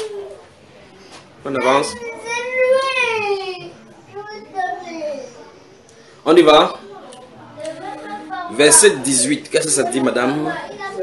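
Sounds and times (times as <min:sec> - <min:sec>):
speech: 0:01.4 - 0:02.1, 0:06.2 - 0:06.8, 0:08.6 - 0:11.0
child crying at a religious teaching gathering: 0:01.6 - 0:03.7.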